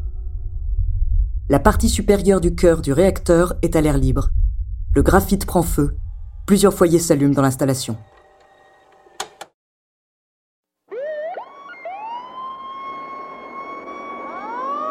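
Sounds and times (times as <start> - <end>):
speech: 1.5 - 4.4, 5.0 - 8.1
fire engine siren wailing: 10.9 - 14.9.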